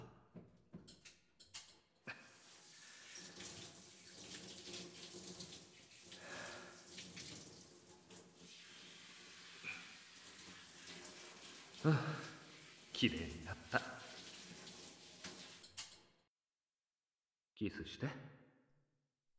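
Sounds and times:
shower water running: 0:02.1 - 0:16.0
speech: 0:11.9 - 0:12.2, 0:13.0 - 0:13.9, 0:17.6 - 0:18.4.

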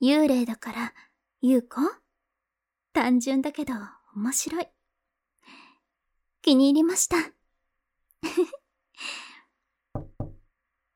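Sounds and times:
speech: 0:00.0 - 0:02.0, 0:03.0 - 0:04.8, 0:06.4 - 0:07.4, 0:08.2 - 0:09.2
firm knocking on a door: 0:10.0 - 0:10.5.

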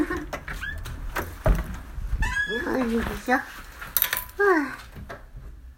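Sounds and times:
front door swinging open with a thud and scraping: 0:00.1 - 0:03.3
speech: 0:02.5 - 0:03.6, 0:04.4 - 0:04.8.

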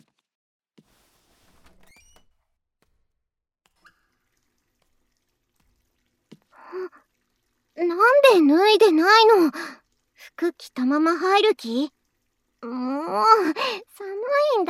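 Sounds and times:
water gushing from a tap into a bathtub: 0:03.7 - 0:14.6
speech: 0:08.0 - 0:09.8, 0:10.4 - 0:12.0, 0:12.6 - 0:14.6.

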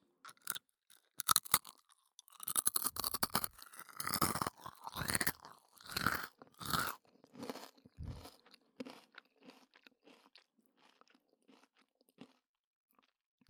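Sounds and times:
Japanese rice crackers being bitten and chewed: 0:00.3 - 0:00.6, 0:01.2 - 0:10.2.

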